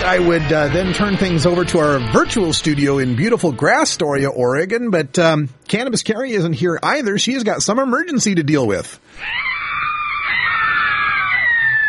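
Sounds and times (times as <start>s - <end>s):
speech: 0.0s - 9.5s
person screaming: 9.2s - 11.8s.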